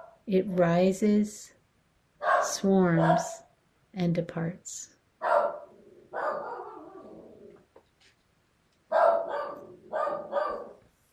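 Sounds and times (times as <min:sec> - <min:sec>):
speech: 0:00.3 - 0:01.6, 0:02.4 - 0:05.0
dog barking in another room: 0:02.2 - 0:03.4, 0:05.2 - 0:07.2, 0:08.9 - 0:10.8.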